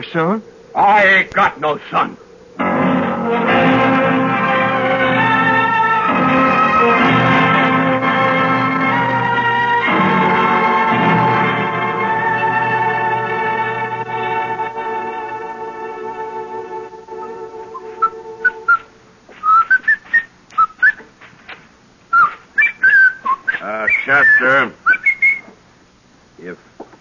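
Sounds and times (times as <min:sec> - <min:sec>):
speech: 0:00.0 - 0:02.7
steady droning chord: 0:02.2 - 0:18.8
person whistling a light wandering tune: 0:17.2 - 0:21.0, 0:22.1 - 0:25.5.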